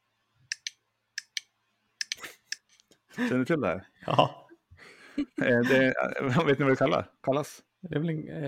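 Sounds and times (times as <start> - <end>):
dog training clicker clicking: 0.5 - 2.8
speech: 3.2 - 4.4, 5.2 - 8.4
laughter: 3.2 - 6.8.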